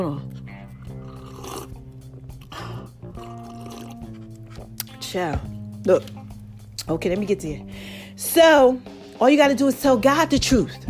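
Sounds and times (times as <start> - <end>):
speech: 0.0 - 0.4, 5.1 - 6.2, 6.9 - 10.8
wet slurping sips of tea: 0.2 - 4.9.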